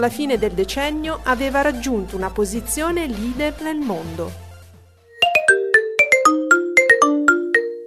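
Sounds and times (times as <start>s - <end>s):
speech: 0.0s - 4.4s
classic mobile phone ringtone melody: 5.1s - 7.8s.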